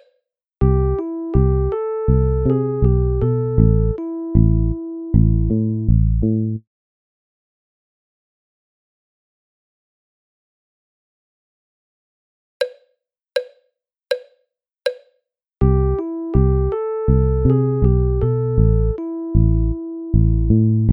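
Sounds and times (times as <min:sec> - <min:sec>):
melodic dictation melody: 0:00.7 - 0:06.4, 0:15.7 - 0:20.8.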